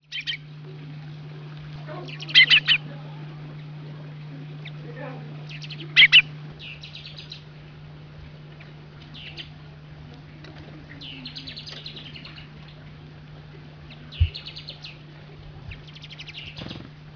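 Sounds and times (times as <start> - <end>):
Madeira Chaffinch calls: 0.0 - 0.4, 1.9 - 3.1, 4.6 - 7.6, 8.6 - 9.6, 10.8 - 12.8, 13.9 - 15.0, 15.7 - 16.9.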